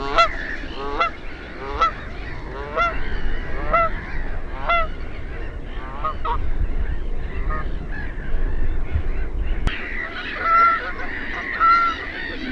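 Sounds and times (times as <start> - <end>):
Canada goose flock honking: 0.0 - 6.4, 9.7 - 12.4
low rumbling noise: 0.0 - 12.4.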